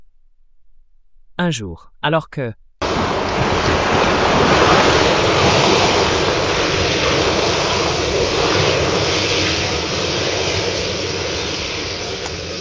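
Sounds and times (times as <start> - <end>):
speech: 1.4 - 2.6
sea waves lapping gently against a beach: 2.8 - 12.5.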